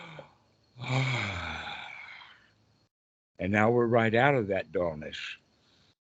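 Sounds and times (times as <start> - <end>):
deep breath taken during a practice to lift out of dullness: 0.0 - 2.5, 5.6 - 6.0
speech: 3.4 - 5.4.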